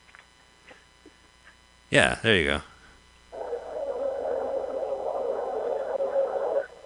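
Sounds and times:
speech: 0:01.9 - 0:02.7
electronic drone with hissing texture and tonal warbles from a film soundtrack: 0:03.3 - 0:06.8.

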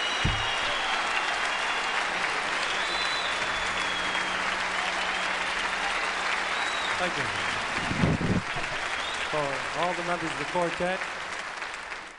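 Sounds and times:
audience applause at a live jazz quartet concert: 0:00.0 - 0:12.1
low thump: 0:00.2 - 0:00.9
speech: 0:07.0 - 0:08.1, 0:09.3 - 0:11.2.

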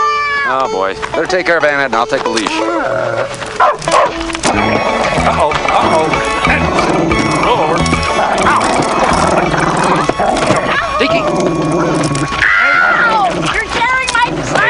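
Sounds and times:
music: 0:00.0 - 0:14.6
speech: 0:00.5 - 0:10.1
pet dog barking in short yips: 0:03.6 - 0:04.2.

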